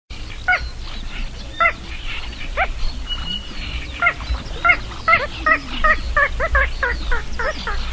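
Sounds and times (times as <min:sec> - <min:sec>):
bird calls: 0:00.1 - 0:07.9
low rumbling background: 0:00.1 - 0:07.9.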